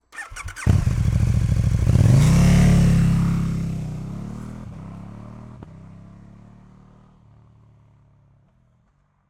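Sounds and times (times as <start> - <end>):
2016 KTM Super Duke R V-twin 1301cc motorcycle engine starting: 0.0 - 4.4
KTM Super Duke R V-twin motorcycle accelerating fast and driving away: 0.2 - 7.2.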